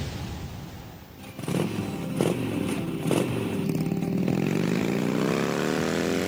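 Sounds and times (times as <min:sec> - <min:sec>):
motorcycle engine revving and accelerating: 0:01.2 - 0:06.2.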